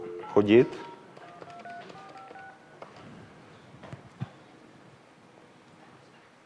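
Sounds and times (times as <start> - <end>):
electronic telephone dialing tones: 0.0 - 2.9
speech: 0.4 - 0.9.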